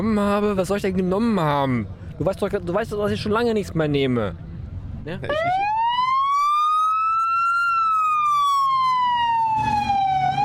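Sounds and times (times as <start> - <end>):
speech: 0.0 - 5.8
broadband road noise: 0.0 - 10.4
police car siren as the car drives across a square in Houston: 5.3 - 10.4.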